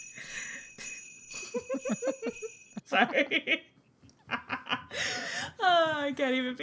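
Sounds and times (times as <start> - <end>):
jingling bells: 0.0 - 3.0
rhythmic laughter: 0.8 - 3.6
speech: 3.0 - 5.1, 5.9 - 6.6.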